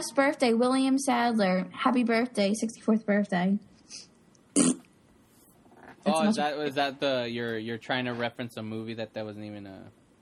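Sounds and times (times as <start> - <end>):
speech: 0.0 - 4.7, 6.0 - 10.0
short loud throaty burp: 4.5 - 4.9.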